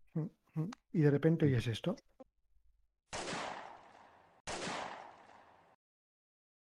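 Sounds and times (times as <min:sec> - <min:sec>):
speech: 0:00.2 - 0:02.1
gunshot bursts: 0:03.1 - 0:05.8.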